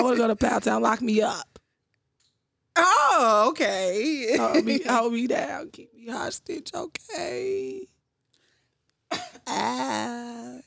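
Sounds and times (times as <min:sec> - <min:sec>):
speech: 0:00.0 - 0:01.5, 0:02.8 - 0:07.9, 0:09.1 - 0:10.6
sharp cough with throaty rasp: 0:09.1 - 0:09.9.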